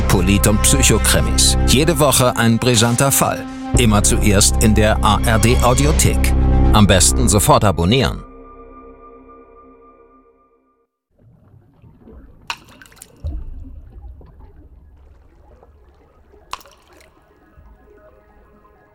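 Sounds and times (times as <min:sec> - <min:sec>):
speech: 0:00.1 - 0:08.3
water lapping and gurgling: 0:11.1 - 0:18.9
sharp plops of stone dropping into water: 0:11.4 - 0:18.2.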